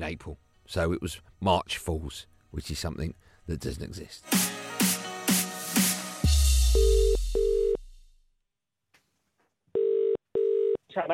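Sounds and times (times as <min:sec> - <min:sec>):
speech: 0:00.0 - 0:04.9, 0:11.0 - 0:11.1
telephone ringback tone in a double-pulse pattern: 0:06.8 - 0:07.8, 0:09.8 - 0:10.8.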